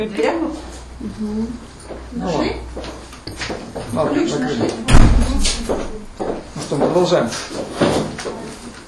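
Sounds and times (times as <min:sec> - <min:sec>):
speech: 0:00.0 - 0:08.4
door swinging shut with a dull thump: 0:04.9 - 0:06.0.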